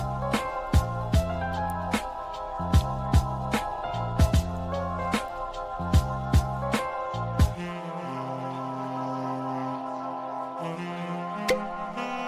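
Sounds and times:
walking bass line: 0.0 - 1.9, 2.6 - 5.1, 5.9 - 7.6
slow jazz playing in a bar: 0.0 - 12.2
sustained mellow chords: 0.0 - 12.2.

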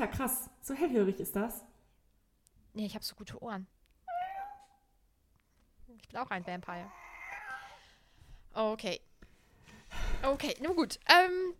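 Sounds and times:
speech: 0.0 - 1.7, 2.8 - 3.8, 6.0 - 7.0, 8.6 - 9.1, 9.9 - 11.5
cat meowing: 4.1 - 4.9, 6.8 - 7.8.

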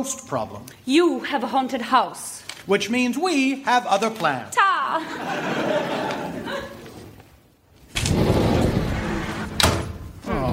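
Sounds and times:
speech: 0.0 - 6.1
laughter: 4.9 - 7.2
heavy door sliding with rough rumbling scrape: 7.9 - 10.5.

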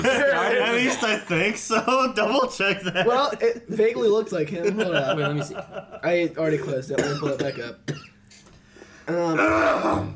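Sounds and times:
laughter: 0.0 - 3.6, 4.5 - 6.2
speech: 1.0 - 8.1, 9.1 - 10.1
loud raspy cough: 6.9 - 8.1.

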